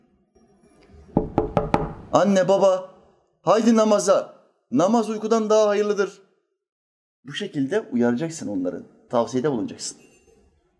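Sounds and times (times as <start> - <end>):
knocking on a door: 1.2 - 2.1
speech: 2.1 - 6.2, 7.2 - 10.1.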